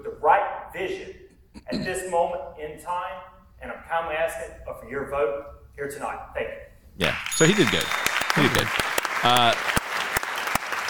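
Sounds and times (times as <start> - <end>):
speech: 0.8 - 9.7
person clapping slowly: 7.2 - 10.8.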